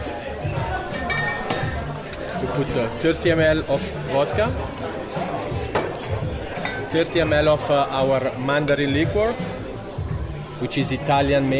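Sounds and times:
murmuring voices at an apres-ski bar: 0.0 - 11.5
glasses clinking while mixing a cocktail at an apres-ski bar: 0.8 - 2.6, 5.7 - 7.7, 8.6 - 9.1
speech: 2.5 - 4.9, 6.9 - 9.5, 10.6 - 11.5.

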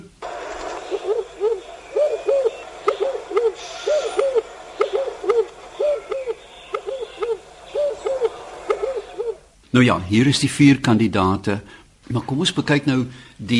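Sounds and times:
red-eyed dove cooing: 0.0 - 9.5
speech: 9.8 - 13.5.

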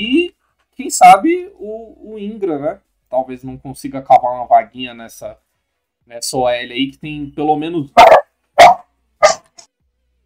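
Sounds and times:
speech: 0.9 - 5.4, 6.1 - 8.2
dog barking: 8.0 - 9.6.

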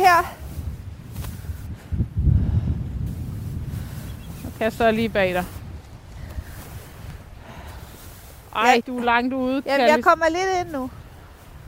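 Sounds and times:
heavy wind buffeting the microphone in cold winter weather: 0.0 - 11.6
sea waves surging and washing: 3.8 - 11.6
speech: 4.6 - 5.6, 8.6 - 11.0.

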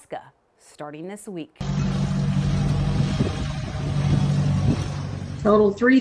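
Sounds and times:
speech: 0.8 - 1.9, 5.4 - 6.0
tractor with cab adapted from Ellis Chalmers XT170 running with deep rumble: 1.6 - 6.0.

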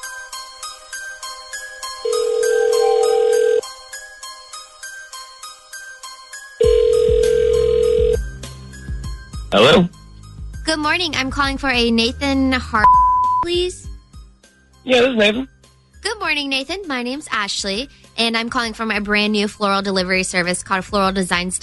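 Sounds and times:
telephone keypad tones while dialing: 2.1 - 3.6, 6.6 - 8.2
speech: 9.5 - 10.0, 10.7 - 13.8, 14.8 - 15.5, 16.3 - 21.6.

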